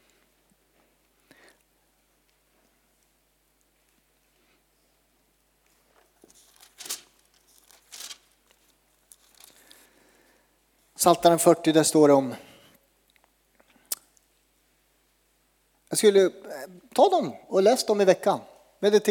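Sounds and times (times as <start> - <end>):
pages of a Bible rustling as someone leafs through it: 6.0 - 9.9
speech: 11.0 - 12.5, 15.9 - 19.0.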